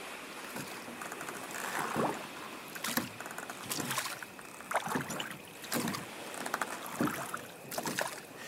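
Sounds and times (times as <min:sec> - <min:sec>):
oars rowing a boat through water: 0:00.4 - 0:08.4
soft wash of water: 0:01.9 - 0:08.3.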